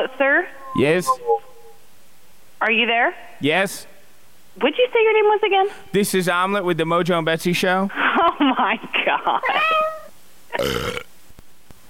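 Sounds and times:
speech: 0.0s - 1.4s, 2.6s - 3.9s, 4.6s - 11.1s
sick cat croaking meow: 9.4s - 10.7s.

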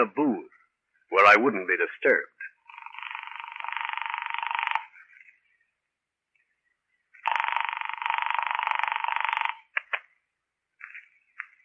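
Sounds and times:
speech: 0.0s - 0.4s, 1.3s - 2.3s
telephone ringing heard through the receiver: 2.7s - 4.9s, 7.2s - 9.7s.

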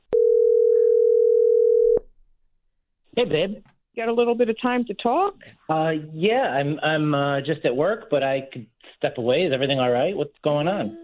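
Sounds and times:
phone line ringing tone: 0.1s - 2.0s
speech: 3.2s - 11.0s.

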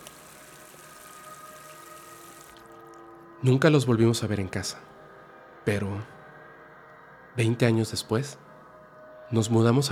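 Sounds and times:
water running down a sink drain: 0.0s - 2.8s
speech: 3.4s - 5.0s, 5.6s - 6.2s, 7.4s - 8.4s, 9.3s - 9.9s.

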